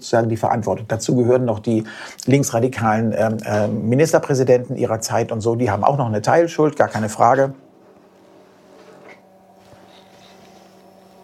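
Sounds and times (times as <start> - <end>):
speech: 0.0 - 7.6
printer whirring into action: 7.7 - 11.2
printer higher-pitched chirps: 8.9 - 11.2.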